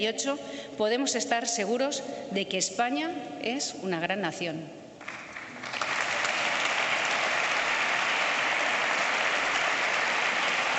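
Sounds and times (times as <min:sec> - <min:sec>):
speech: 0:00.0 - 0:05.2
large audience applause after a speech: 0:05.0 - 0:10.7.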